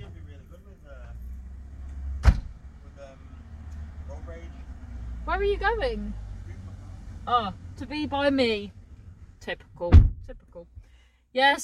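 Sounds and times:
steady low vehicle rumble: 0:00.0 - 0:11.2
car door closing: 0:02.2 - 0:02.6, 0:09.8 - 0:10.3
speech: 0:05.4 - 0:06.2, 0:07.3 - 0:08.8, 0:09.4 - 0:11.6.

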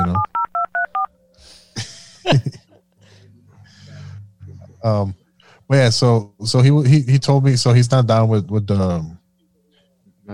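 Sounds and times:
telephone keypad dual-pitched dialing beeps: 0:00.0 - 0:01.1
laughter: 0:01.8 - 0:02.9
speech: 0:02.3 - 0:02.6, 0:04.8 - 0:09.2.

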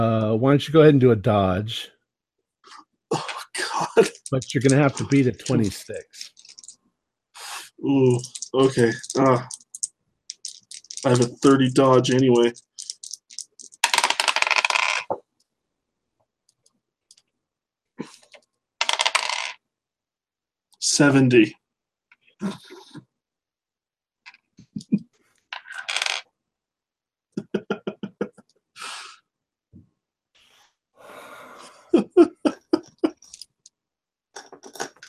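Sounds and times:
speech: 0:00.0 - 0:02.0, 0:04.0 - 0:06.4, 0:07.8 - 0:09.6, 0:11.0 - 0:12.7, 0:21.0 - 0:21.6, 0:22.4 - 0:22.7
laughter: 0:03.1 - 0:06.0, 0:27.4 - 0:28.4, 0:31.9 - 0:33.2
dice rattling and clattering on a table during a tabletop role-playing game: 0:03.8 - 0:06.8, 0:08.1 - 0:15.2, 0:18.2 - 0:19.6, 0:25.6 - 0:26.3.

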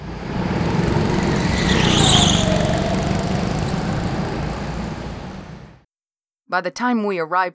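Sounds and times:
high-pitched squeal: 0:00.0 - 0:05.8
old car engine starting and rattling: 0:00.1 - 0:05.8
speech: 0:06.5 - 0:07.5.

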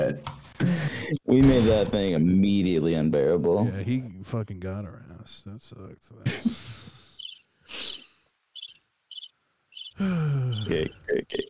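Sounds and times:
speech: 0:00.0 - 0:07.0, 0:10.0 - 0:11.4
cricket chirping: 0:06.8 - 0:11.4.

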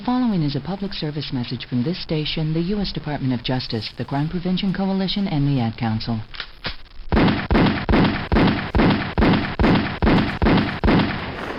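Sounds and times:
speech: 0:00.1 - 0:06.8
gunshots in a public service message about children killed by gunfire: 0:06.2 - 0:11.5.

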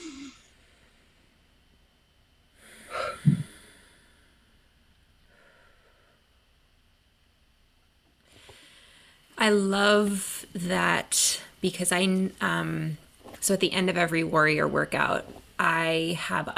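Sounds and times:
nasal snort: 0:00.0 - 0:00.5
deep breath taken slowly into the belly: 0:02.6 - 0:04.7, 0:05.3 - 0:06.4, 0:08.2 - 0:09.3
speech: 0:09.4 - 0:16.5.

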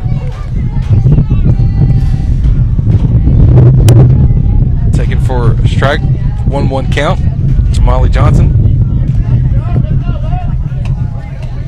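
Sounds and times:
hard wind buffeting the microphone at an outdoor softball game: 0:00.0 - 0:11.6
commentator talking at an outdoor softball game: 0:04.9 - 0:08.7
speech: 0:05.9 - 0:07.3, 0:07.9 - 0:08.6.

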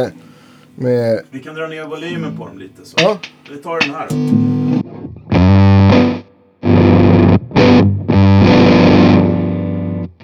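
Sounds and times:
speech: 0:00.0 - 0:00.2, 0:00.8 - 0:05.3
electric guitar through a germanium transistor fuzz distortion effect: 0:03.2 - 0:10.1.

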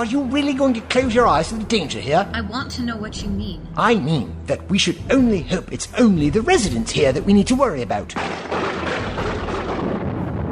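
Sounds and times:
speech: 0:00.0 - 0:08.8
loud continuous rolling thunder in a heavy storm: 0:08.3 - 0:10.5.

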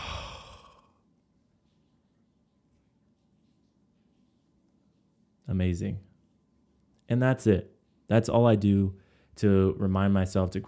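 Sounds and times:
exhaling through the mouth as a relaxing breath: 0:00.0 - 0:00.9
speech: 0:05.5 - 0:06.1, 0:07.1 - 0:10.6.

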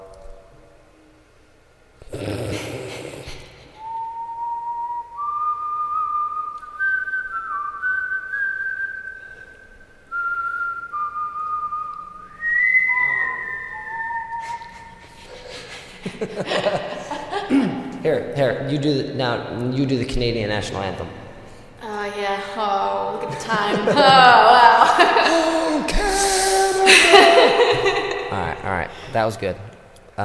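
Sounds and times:
person whistling a tune in a whistling contest: 0:03.8 - 0:15.7
breathy laugh: 0:14.4 - 0:17.9, 0:23.4 - 0:28.3
speech: 0:18.1 - 0:21.2, 0:22.5 - 0:25.4, 0:28.6 - 0:30.2.

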